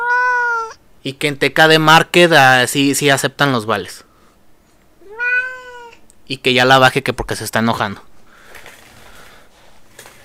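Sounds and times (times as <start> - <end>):
cat meowing: 0.0 - 0.8, 5.0 - 6.1
speech: 1.0 - 4.1, 6.3 - 8.1.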